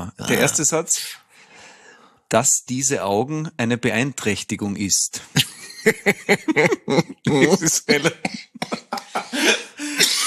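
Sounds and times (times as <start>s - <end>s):
person laughing: 0.3s - 0.6s, 5.3s - 10.2s
speech: 0.3s - 1.2s, 2.3s - 10.2s
person having a coughing fit: 6.4s - 10.2s.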